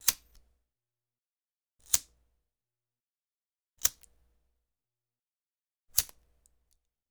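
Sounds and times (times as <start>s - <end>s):
lighter: 6.0s - 6.2s.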